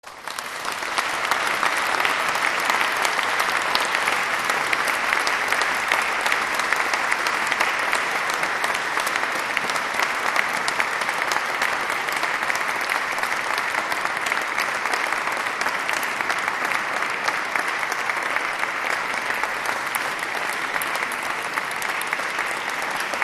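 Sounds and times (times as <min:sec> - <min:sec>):
applause: 0:00.0 - 0:23.2.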